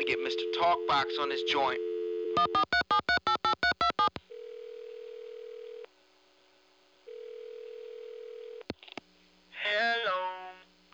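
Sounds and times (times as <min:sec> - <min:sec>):
telephone ringback tone: 0:00.0 - 0:02.6, 0:04.3 - 0:05.8, 0:07.1 - 0:08.6
speech: 0:00.1 - 0:02.8
touch-tone telephone dialing beeps: 0:02.2 - 0:04.1.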